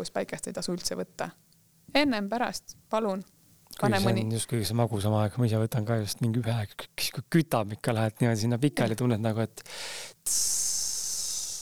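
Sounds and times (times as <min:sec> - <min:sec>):
speech: 0:00.0 - 0:10.8
voice imitating meat sizzling on a grill: 0:10.2 - 0:11.6.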